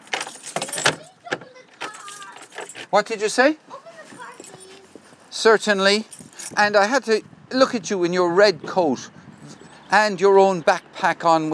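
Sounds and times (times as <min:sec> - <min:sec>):
keys jangling while locking a house door: 0:00.0 - 0:02.9, 0:04.1 - 0:05.0, 0:06.0 - 0:06.6
speech: 0:02.9 - 0:03.7, 0:05.4 - 0:09.2, 0:09.9 - 0:11.5.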